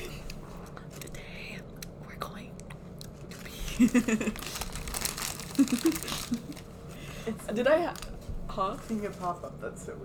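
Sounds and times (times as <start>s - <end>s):
paper or plastic being crumpled: 3.2s - 9.5s
speech: 3.8s - 4.6s, 5.6s - 6.6s, 7.2s - 10.0s.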